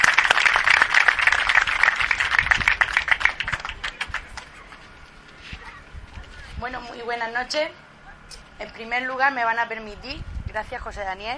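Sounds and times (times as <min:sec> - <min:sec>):
audience applause: 0:00.0 - 0:04.8
speech: 0:07.0 - 0:07.8, 0:08.6 - 0:11.3.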